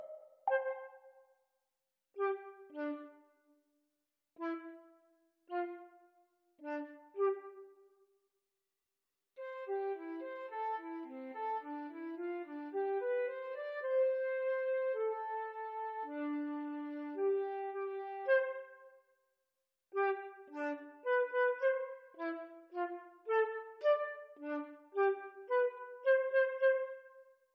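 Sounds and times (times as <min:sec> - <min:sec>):
flute duet at exam speed: 0:00.5 - 0:01.2, 0:02.2 - 0:03.2, 0:04.4 - 0:04.9, 0:06.6 - 0:07.8, 0:09.4 - 0:18.9, 0:20.0 - 0:27.3.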